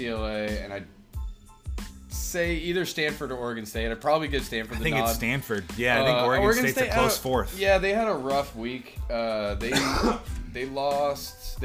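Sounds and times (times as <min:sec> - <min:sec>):
speech: 0:00.0 - 0:01.0, 0:02.1 - 0:11.6
harsh raspy cough: 0:09.6 - 0:10.4.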